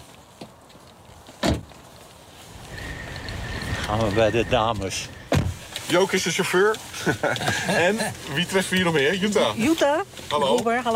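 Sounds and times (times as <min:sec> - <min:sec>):
car door thumping shut: 0:01.4 - 0:01.7, 0:05.3 - 0:05.6
speech: 0:03.9 - 0:05.2, 0:05.9 - 0:10.9.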